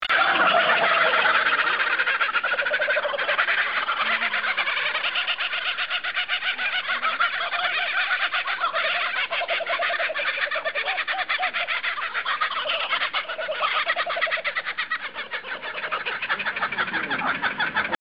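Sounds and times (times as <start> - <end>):
pair of kookaburras laughing: 0.0 - 18.0.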